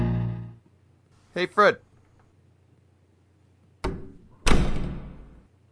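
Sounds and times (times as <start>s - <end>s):
speech: 1.6s - 1.9s
door thudding shut: 3.8s - 5.4s.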